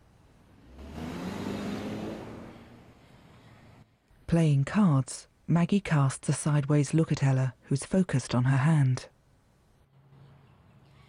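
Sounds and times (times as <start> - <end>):
car driving off: 0.4 - 3.8
speech: 4.3 - 9.2.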